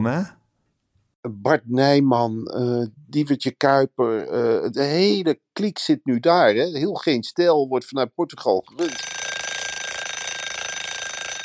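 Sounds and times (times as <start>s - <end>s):
speech: 0.0s - 0.4s, 1.2s - 9.2s
electronic alarm clock ringing: 8.7s - 11.4s.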